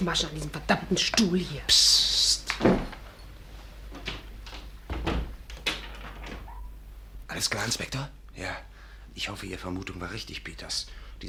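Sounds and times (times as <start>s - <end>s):
speech: 0.0s - 2.8s, 7.4s - 11.2s
door being opened with dull clunks and knocks: 4.0s - 6.6s.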